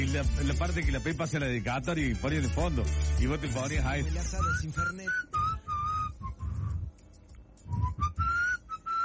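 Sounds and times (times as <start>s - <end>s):
speech: 0.0s - 5.4s
person whistling a wavering melody: 4.3s - 6.9s, 7.6s - 9.0s.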